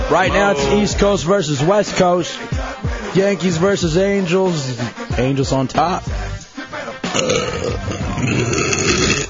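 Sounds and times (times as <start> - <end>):
speech: 0.1 - 2.5, 3.1 - 6.2, 7.1 - 8.9
long loud hoarse burp: 7.1 - 9.2.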